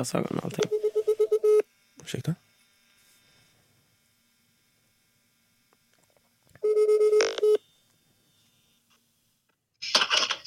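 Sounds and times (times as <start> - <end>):
speech: 0.0 - 0.8, 2.1 - 2.4
outgoing telephone call ringing tone: 0.6 - 1.6, 6.6 - 7.7.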